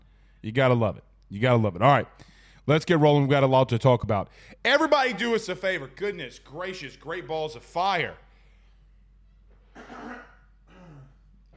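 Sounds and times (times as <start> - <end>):
speech: 0.4 - 8.2
person clearing throat: 9.7 - 11.5.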